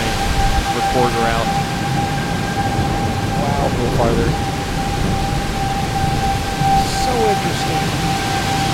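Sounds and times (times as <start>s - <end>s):
heavy rain hissing during a storm: 0.0s - 8.7s
tornado siren wailing during a storm: 0.0s - 8.7s
speech: 1.0s - 1.6s, 3.7s - 5.3s, 7.1s - 8.2s.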